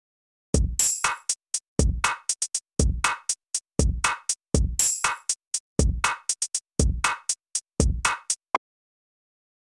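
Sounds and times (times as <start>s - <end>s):
drum loop through an external signal processor: 0.6s - 8.4s.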